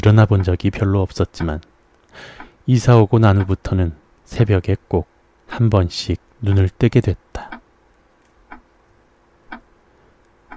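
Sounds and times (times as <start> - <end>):
wall clock ticking: 0.0 - 1.7, 2.4 - 3.8, 6.4 - 7.7, 8.4 - 8.8, 9.4 - 10.5
speech: 0.0 - 7.5
faint hiss: 0.0 - 10.5.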